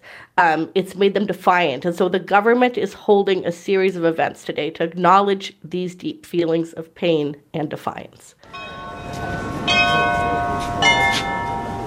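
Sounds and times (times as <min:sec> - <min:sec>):
speech: 0:00.4 - 0:08.6
cathedral church bells ringing: 0:08.4 - 0:11.8.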